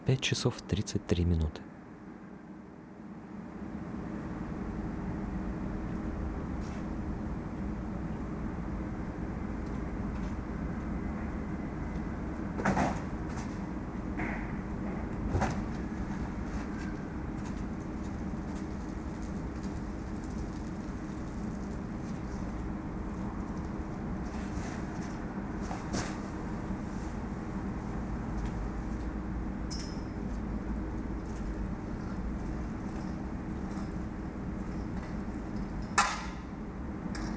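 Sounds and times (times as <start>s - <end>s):
ventilation fans droning outdoors behind a hypermarket: 0.0s - 37.3s
speech: 0.1s - 1.7s.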